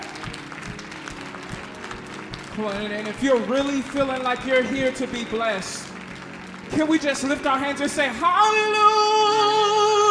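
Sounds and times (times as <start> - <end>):
audience applause at a religious celebration: 0.0 - 8.7
speech: 2.6 - 5.9, 6.7 - 9.6.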